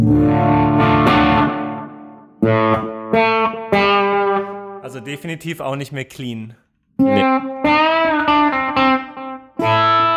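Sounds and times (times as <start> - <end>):
electric guitar with mild overdrive, booster and reverb playing chords: 0.0 - 4.9, 7.0 - 10.1
speech: 5.1 - 7.3.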